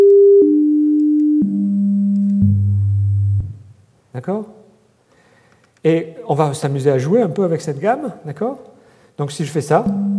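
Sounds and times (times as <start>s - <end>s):
synthesized tones of a harmonic scale stepping downward: 0.1s - 3.7s
speech: 4.2s - 4.6s, 5.9s - 10.1s.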